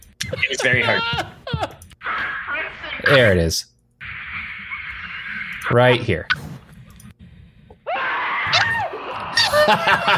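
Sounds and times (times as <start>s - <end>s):
speech: 0.3s - 1.7s, 3.1s - 3.7s, 5.7s - 6.5s, 9.6s - 10.1s
laughter: 0.3s - 1.9s, 9.4s - 10.1s
loud strained human scream: 0.6s - 1.7s, 7.9s - 9.8s.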